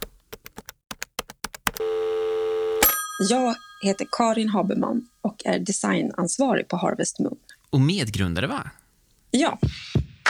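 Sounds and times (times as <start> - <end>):
phone keypad presses: 0.0 - 2.0
steady loud electronic phone ringing tone: 1.8 - 4.8
speech: 3.2 - 10.0.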